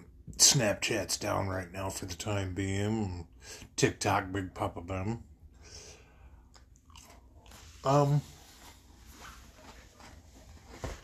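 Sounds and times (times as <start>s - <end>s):
speech: 0.5s - 5.8s, 7.8s - 8.4s
crunchy chewing of a cookie: 6.8s - 7.3s.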